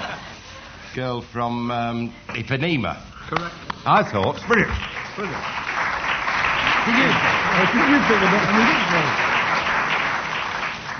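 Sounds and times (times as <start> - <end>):
speech: 1.0 - 5.6, 6.8 - 9.3
tumultuous audience applause: 4.3 - 10.9.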